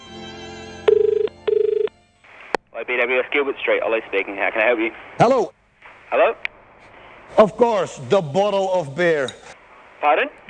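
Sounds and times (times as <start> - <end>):
old telephone ringing with rattling bell strikes: 0.9 - 1.9
speech: 2.9 - 6.5, 7.3 - 10.4.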